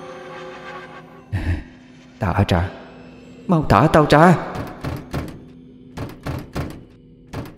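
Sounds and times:
speech: 2.2s - 2.8s, 3.5s - 4.7s
locked door being kicked, shoved and yanked: 4.5s - 7.5s.

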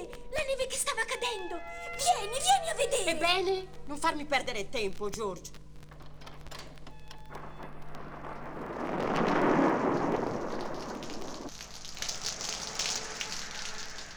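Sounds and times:
speech: 0.5s - 5.6s
heavy rain pouring in torrents: 5.9s - 14.1s.

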